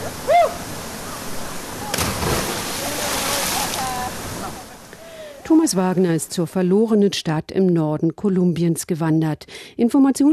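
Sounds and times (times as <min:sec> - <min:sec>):
person whooping: 0:00.2 - 0:00.6
rock-pool water churning and sloshing: 0:00.7 - 0:05.9
person jumping from a rock into cold rock-pool water: 0:01.9 - 0:04.0
speech: 0:05.5 - 0:10.3.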